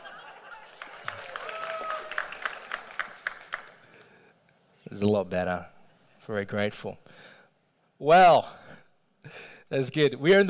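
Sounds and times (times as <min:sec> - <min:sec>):
thin scattered applause from a small audience at a sermon: 0:00.0 - 0:04.2
speech: 0:04.9 - 0:05.7, 0:06.3 - 0:07.3, 0:08.0 - 0:08.6, 0:09.2 - 0:10.4.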